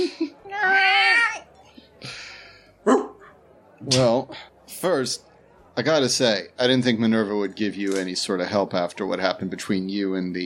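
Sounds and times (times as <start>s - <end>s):
cat meowing: 0.5s - 1.4s
speech: 3.9s - 10.4s.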